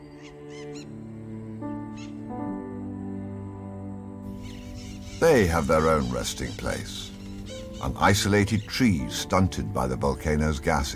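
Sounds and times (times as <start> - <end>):
parakeets squawking: 4.3 - 8.8
speech: 5.2 - 7.1, 7.8 - 10.9.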